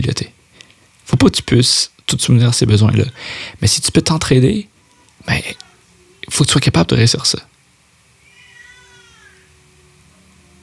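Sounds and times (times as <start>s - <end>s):
speech: 0.0s - 0.4s, 1.2s - 5.6s, 6.3s - 7.5s
steady low electrical hum: 0.0s - 10.6s
two-month-old baby crying: 4.8s - 6.4s, 8.2s - 10.0s.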